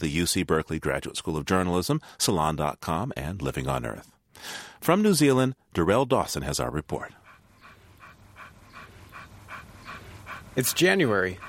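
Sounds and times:
speech: 0:00.0 - 0:07.2, 0:10.6 - 0:11.4
dog panting while running on path: 0:06.8 - 0:11.4.

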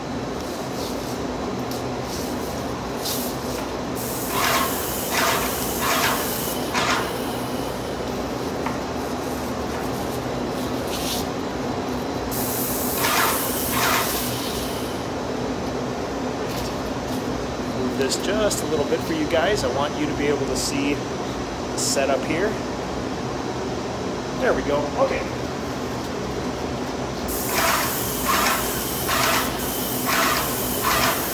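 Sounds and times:
constant mechanical hum: 0:00.0 - 0:31.3
paint sprayer spraying the edges and top of a door: 0:00.4 - 0:11.4, 0:12.1 - 0:15.0, 0:27.2 - 0:31.3
speech: 0:18.1 - 0:21.1, 0:22.0 - 0:22.7, 0:24.4 - 0:25.4.

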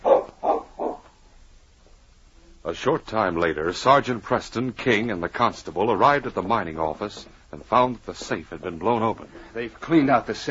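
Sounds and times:
dog that has picked up a scent barking at a mining office: 0:00.0 - 0:01.1
speech: 0:02.7 - 0:10.4.

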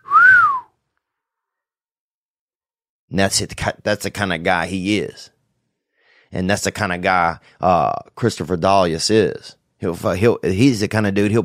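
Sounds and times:
imitated wolf whistle: 0:00.0 - 0:00.8
speech: 0:03.1 - 0:05.4, 0:06.3 - 0:11.4.

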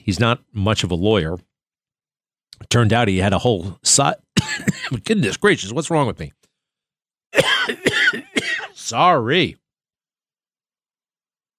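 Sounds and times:
speech: 0:00.0 - 0:01.5, 0:02.6 - 0:06.4, 0:08.9 - 0:09.6
person coughing harshly: 0:04.4 - 0:05.0, 0:07.4 - 0:08.8.

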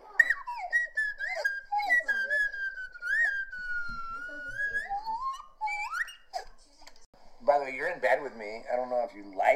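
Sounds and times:
slide whistle playing a birthday song: 0:00.0 - 0:06.4
speech: 0:07.6 - 0:09.5.

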